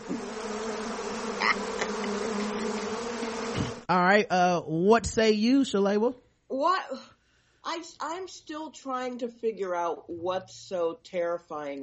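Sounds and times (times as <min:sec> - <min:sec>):
bees buzzing as a sound effect: 0:00.0 - 0:03.9
speech: 0:03.9 - 0:11.8.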